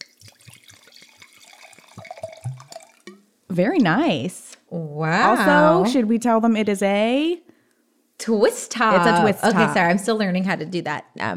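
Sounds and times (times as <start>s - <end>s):
drink being poured from a bottle: 0.0s - 3.2s
speech: 3.5s - 4.4s, 5.0s - 7.4s, 8.2s - 11.3s.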